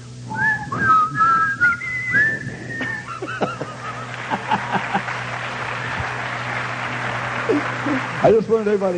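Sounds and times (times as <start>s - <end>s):
person whistling a slow hymn tune: 0.3s - 3.2s
laughter: 2.8s - 8.2s
scattered claps in a roomy space: 4.1s - 8.9s
speech: 8.2s - 8.9s.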